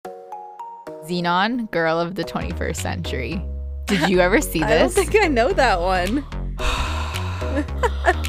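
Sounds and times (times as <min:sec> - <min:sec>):
speech: 0:01.0 - 0:06.4, 0:07.6 - 0:08.0
heavy gasping breathing: 0:06.3 - 0:08.2.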